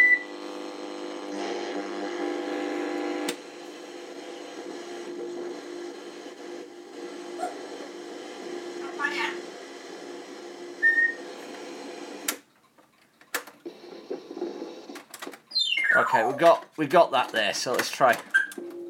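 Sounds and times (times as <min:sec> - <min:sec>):
clock radio static with warbling tones while tuning between stations: 0:00.0 - 0:12.4, 0:13.7 - 0:15.0
speech: 0:16.1 - 0:18.3.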